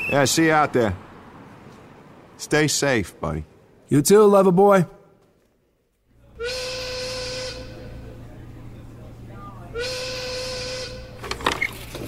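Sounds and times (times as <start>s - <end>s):
long loud whistle blasts signaling breakfast is over: 0.0s - 0.4s, 6.4s - 8.0s, 9.7s - 11.2s
speech: 0.1s - 1.0s, 2.4s - 5.0s.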